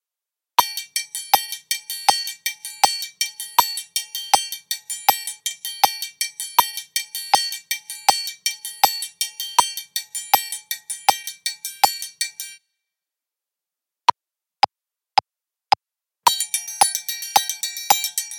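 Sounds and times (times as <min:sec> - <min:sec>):
triangle: 0:00.6 - 0:12.6, 0:16.3 - 0:18.3.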